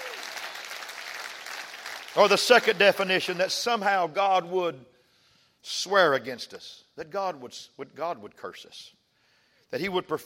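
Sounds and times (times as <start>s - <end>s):
congregation clapping hands in applause: 0.0s - 3.5s
speech: 2.2s - 4.9s, 5.6s - 9.0s, 9.7s - 10.2s.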